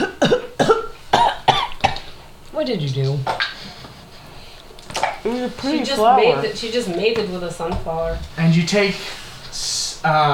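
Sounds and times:
person coughing: 0.0 - 2.1
speech: 2.6 - 3.6, 5.3 - 10.3.

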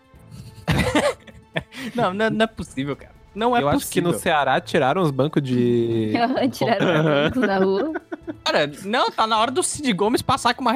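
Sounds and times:
laughter: 0.3 - 2.6, 6.2 - 8.8
person coughing harshly and raspily: 0.6 - 1.4
speech: 1.8 - 10.7.

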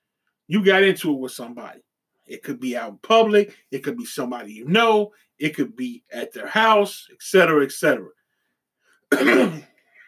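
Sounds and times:
speech: 0.5 - 8.2, 9.1 - 9.7
faint breath: 8.2 - 9.1
person clearing throat: 9.1 - 9.7.

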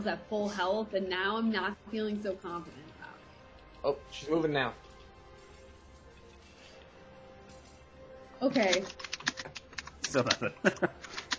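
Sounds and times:
speech: 0.0 - 2.8, 3.8 - 4.8, 8.4 - 9.1, 10.1 - 11.1
rapid forceful typing on a computer keyboard: 8.5 - 11.3.

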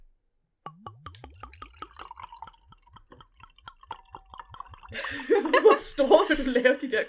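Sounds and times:
cold sweet wine glugging from a bottle into a wine glass: 0.7 - 6.1
speech: 4.9 - 7.0
laughter: 5.0 - 6.8.

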